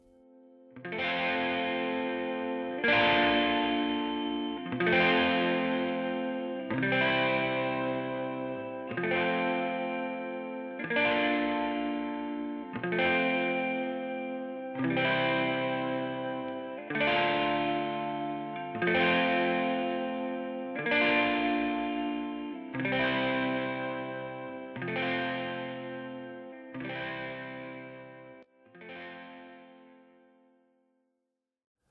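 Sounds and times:
slightly distorted effect-laden electric guitar strumming sustained chords: 0.9 - 28.4.

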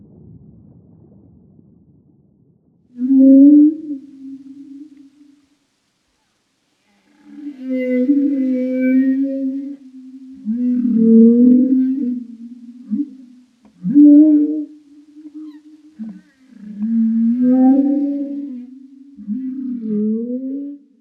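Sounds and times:
humpback whale calls: 3.0 - 5.5, 6.8 - 20.9.

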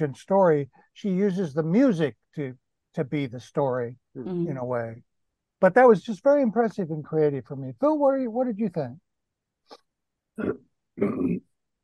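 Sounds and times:
speech: 0.0 - 9.0, 10.4 - 11.8
person clearing throat: 10.4 - 11.8.

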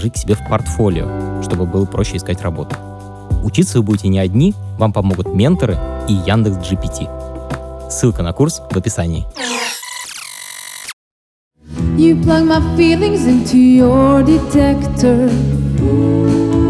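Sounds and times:
speech: 0.0 - 7.3, 7.9 - 9.7, 12.0 - 16.6
short squeaky bright intro: 9.4 - 11.0.

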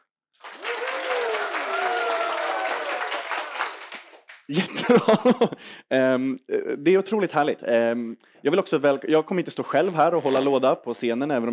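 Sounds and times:
live audience applauding in a hall in Stockholm Sweden: 0.4 - 4.6
faint audience cheers and whoops: 0.5 - 3.5
laughter: 4.5 - 5.6
speech: 4.5 - 11.5.

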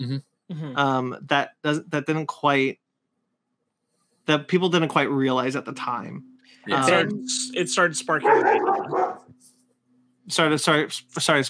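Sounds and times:
speech: 0.0 - 2.8, 4.3 - 9.1, 10.3 - 11.4
puppy barking and yipping: 8.3 - 9.2.

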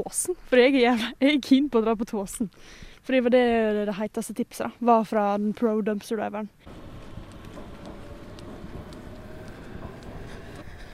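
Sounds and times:
speech: 0.0 - 6.8
metro train rolling along the rails: 6.7 - 10.9.

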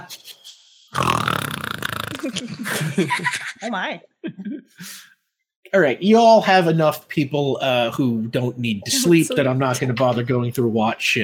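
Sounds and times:
voice imitating loud snoring: 0.9 - 2.8
speech: 2.2 - 4.1, 5.7 - 11.2
laughter: 2.2 - 5.0, 8.9 - 10.7.

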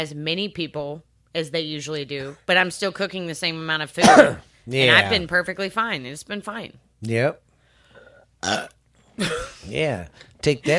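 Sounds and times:
speech: 0.0 - 7.4, 8.4 - 10.7
person burping: 8.4 - 9.6.

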